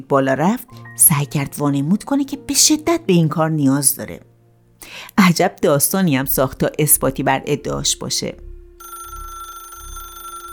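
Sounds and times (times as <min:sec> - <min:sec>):
speech: 0:00.0 - 0:08.5
telephone ringing with a buzzing electronic bell tone: 0:08.8 - 0:10.5.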